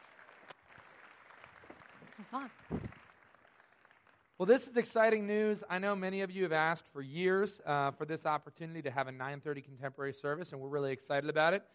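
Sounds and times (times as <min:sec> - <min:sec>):
audience crowd applauding: 0:00.0 - 0:04.9
speech: 0:02.3 - 0:02.9, 0:04.4 - 0:11.7.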